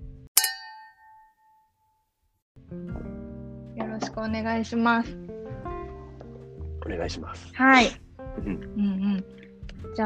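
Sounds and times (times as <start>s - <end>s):
glasses clinking in a toast: 0.4s - 1.6s
speech: 4.1s - 5.4s, 6.8s - 10.0s.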